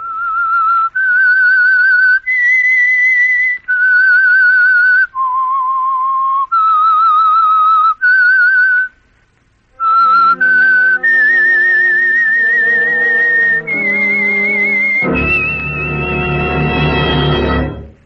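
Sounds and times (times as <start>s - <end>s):
lone whistler whistling a slow eerie melody: 0.0s - 8.9s, 9.8s - 17.2s
orchestra playing a full loud chord: 9.8s - 18.0s.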